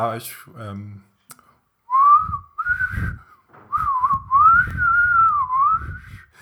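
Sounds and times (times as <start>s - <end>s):
speech: 0.0s - 1.1s
person whistling a short improvised tune as a makeshift jingle: 1.9s - 6.3s.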